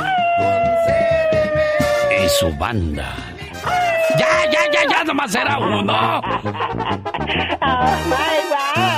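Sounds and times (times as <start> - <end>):
person imitating a coyote howl: 0.0 - 2.6, 3.6 - 6.2
rhythmic thumping music: 0.0 - 8.9
person announcing a banda singer: 1.9 - 6.2, 7.8 - 8.9
speech: 2.3 - 3.3, 4.2 - 8.9
laughter: 4.3 - 8.5.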